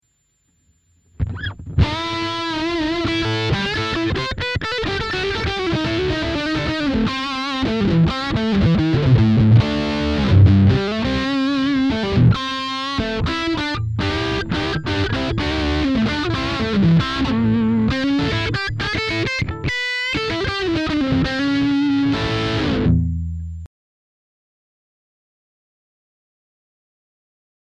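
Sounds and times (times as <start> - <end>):
guitar solo at maximum gain through headphone guitar amp: 1.2 - 23.6.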